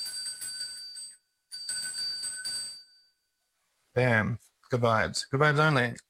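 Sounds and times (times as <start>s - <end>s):
small hand bell being shaken: 0.0s - 3.3s
speech: 4.0s - 6.0s.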